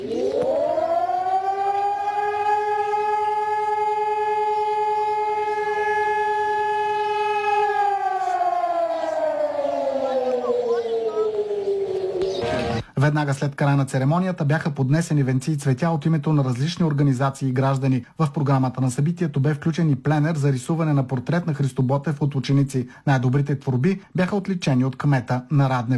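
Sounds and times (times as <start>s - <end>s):
civil defense siren wailing: 0.0s - 12.8s
speech: 13.1s - 25.9s.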